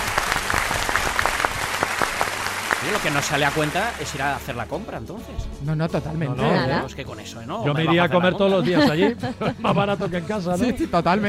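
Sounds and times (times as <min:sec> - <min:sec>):
small audience applause on a Spanish talk show: 0:00.0 - 0:04.5
speech: 0:02.8 - 0:11.2
laughter: 0:07.7 - 0:11.0.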